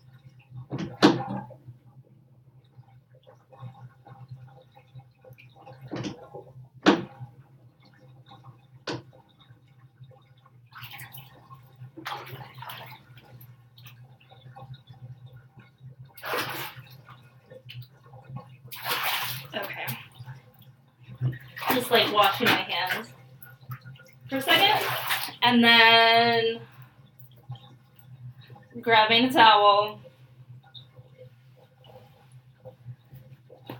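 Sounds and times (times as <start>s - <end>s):
bathtub water draining after the plug is pulled: 0.0s - 33.7s
speech: 21.9s - 23.0s, 24.3s - 26.6s, 28.8s - 30.0s.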